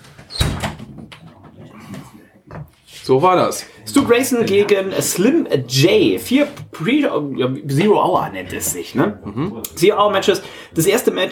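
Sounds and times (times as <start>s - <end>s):
door hinge creaking: 0.1s - 1.6s
speech: 3.1s - 11.3s.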